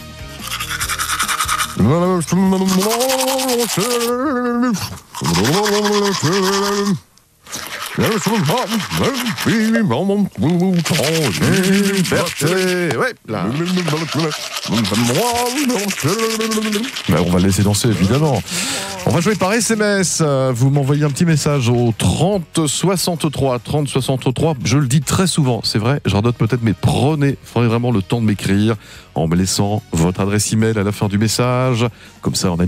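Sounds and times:
person singing through a mouthful of toothbrush in the shower: 0:00.0 - 0:22.4
speech: 0:01.8 - 0:32.6
shower water rushing: 0:05.1 - 0:09.8, 0:10.4 - 0:19.7.

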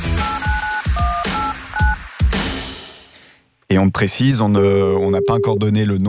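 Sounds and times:
phone keypad beeps while dialing a number: 0:00.2 - 0:02.0, 0:04.7 - 0:05.7
speech: 0:03.7 - 0:06.0.

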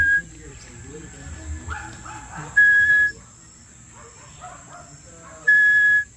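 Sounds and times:
person whistling imitation of small tinamou call: 0:00.0 - 0:00.2, 0:02.6 - 0:03.2, 0:05.5 - 0:06.1
murmur: 0:00.0 - 0:06.1.

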